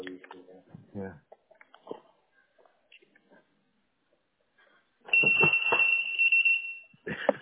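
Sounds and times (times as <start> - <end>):
people talking: 0.0 - 1.2
shrill steady electronic alarm: 5.1 - 7.0.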